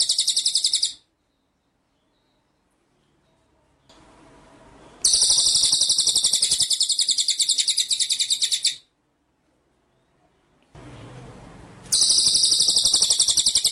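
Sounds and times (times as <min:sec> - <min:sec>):
White-rumped shama song with dense high rattling trill: 0:00.0 - 0:01.0, 0:05.0 - 0:08.8, 0:11.9 - 0:13.7.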